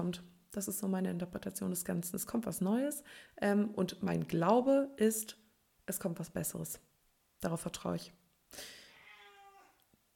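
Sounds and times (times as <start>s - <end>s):
speech: 0.0s - 8.8s
tomcat meowing: 8.9s - 9.8s.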